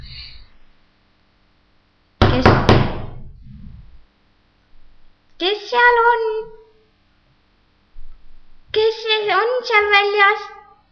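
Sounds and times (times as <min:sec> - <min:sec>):
sharp knocks on the wooden door of a grandmother's house: 0:02.2 - 0:03.2
speech: 0:05.4 - 0:06.6, 0:08.7 - 0:10.6.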